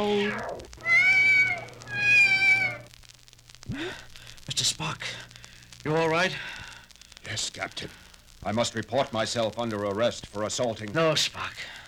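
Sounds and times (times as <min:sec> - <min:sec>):
cat meowing: 0:00.0 - 0:02.9
low steady hum: 0:00.0 - 0:11.8
speech: 0:04.6 - 0:06.6, 0:07.3 - 0:11.8.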